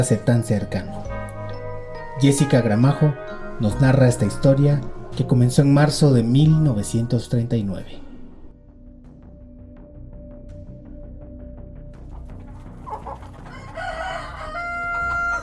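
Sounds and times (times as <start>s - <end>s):
speech: 0.0s - 1.1s, 2.2s - 8.0s
chickens clucking: 12.1s - 15.4s
roosters crowing: 12.6s - 15.4s.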